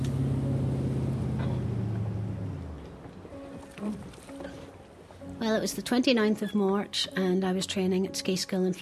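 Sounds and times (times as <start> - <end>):
motorboat engine passing by: 0.0 - 4.0
speech: 3.8 - 4.2, 5.4 - 8.8.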